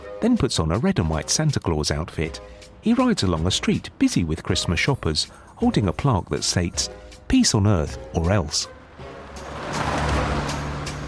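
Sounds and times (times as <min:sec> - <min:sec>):
speech: 0:00.2 - 0:08.8
cars and trucks passing on a busy city street: 0:08.5 - 0:11.0.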